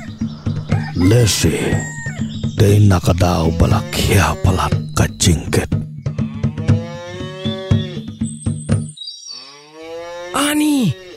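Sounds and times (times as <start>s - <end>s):
speech: 1.0s - 5.8s
cow mooing loudly in long drawn-out calls: 6.2s - 8.1s, 9.3s - 11.1s.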